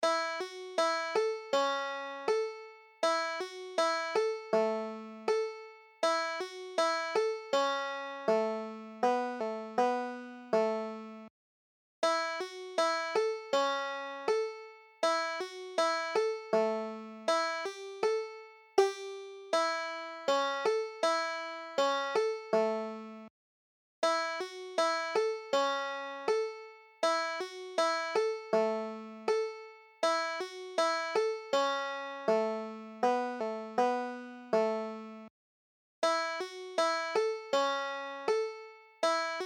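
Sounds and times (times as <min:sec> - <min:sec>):
banjo tune: 0:00.0 - 0:11.3, 0:12.0 - 0:23.3, 0:24.0 - 0:35.3, 0:36.0 - 0:39.4.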